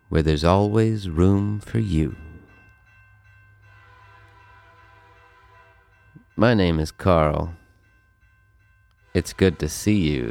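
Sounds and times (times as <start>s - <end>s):
train rumbling on tracks: 0.0s - 10.3s
speech: 0.1s - 2.2s, 6.4s - 7.6s, 9.2s - 10.3s
long sustained train horn blaring: 3.6s - 6.2s, 9.0s - 10.3s.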